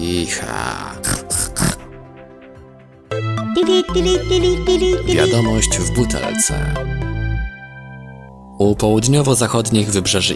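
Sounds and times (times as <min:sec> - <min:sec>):
speech: 0:00.1 - 0:01.3, 0:03.6 - 0:07.2, 0:08.6 - 0:10.3
pig grunting: 0:00.4 - 0:02.0
bright musical jingle with sustained tones: 0:03.1 - 0:08.3.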